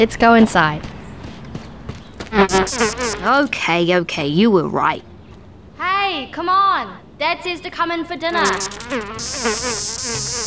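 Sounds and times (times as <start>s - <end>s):
speech: 0.0s - 0.9s, 2.3s - 5.1s, 5.8s - 10.4s
insects buzzing in a dense steady drone: 2.2s - 3.6s, 8.1s - 10.4s
high bright hiss: 8.3s - 10.4s.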